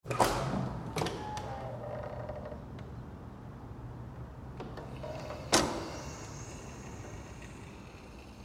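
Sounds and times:
commercial metal push door opening and closing: 0:00.1 - 0:02.7, 0:04.6 - 0:06.4.

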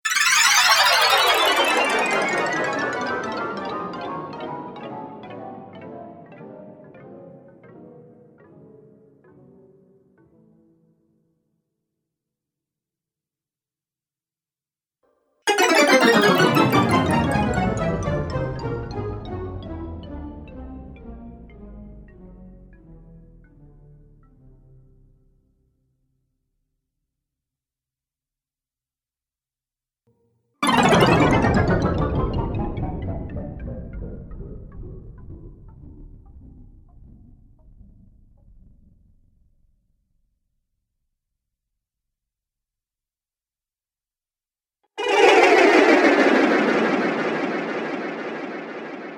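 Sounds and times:
fantasy magic sound effects: 0:00.1 - 0:03.5, 0:15.5 - 0:18.9, 0:30.6 - 0:32.6, 0:45.0 - 0:49.1.

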